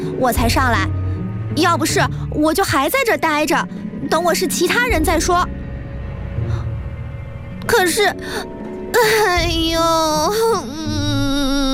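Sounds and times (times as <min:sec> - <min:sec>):
speech: 0:00.0 - 0:05.6, 0:07.7 - 0:11.0
girl sobbing and crying in a wavering wailing voice: 0:07.7 - 0:11.7.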